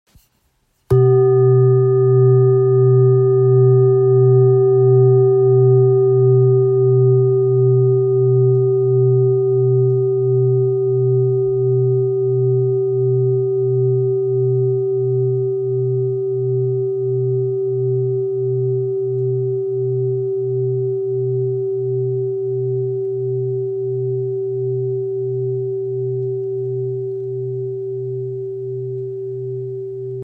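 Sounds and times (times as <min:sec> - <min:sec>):
engraved Buddha singing bowl 2.68 kg: 0:00.9 - 0:30.2.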